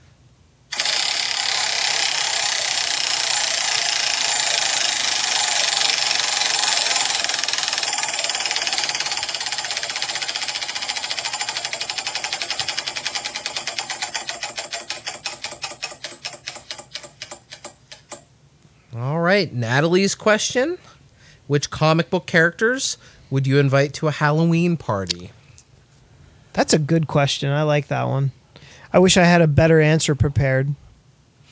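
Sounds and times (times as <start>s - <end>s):
prize wheel being spun and clicking: 0.7s - 18.2s
speech: 19.4s - 25.4s, 26.6s - 30.8s.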